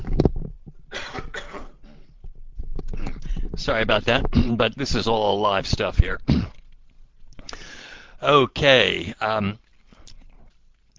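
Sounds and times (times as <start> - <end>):
person with a scratchy throat coughing harshly: 0.9 - 2.1, 4.3 - 4.6, 6.3 - 6.6
speech: 3.6 - 6.4, 8.2 - 9.6.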